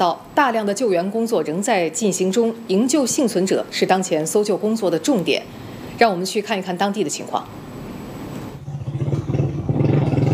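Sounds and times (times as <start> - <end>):
speech: 0.0 - 7.7
motorcycle engine rumbling while riding toward an earthquake zone: 8.5 - 10.3.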